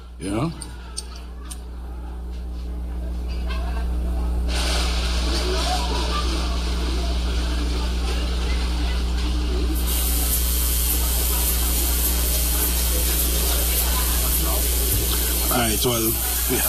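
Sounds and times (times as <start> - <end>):
low mechanical hum: 0.0 - 16.6
speech: 0.2 - 0.8, 15.8 - 16.6
steam spray hissing: 9.7 - 16.6.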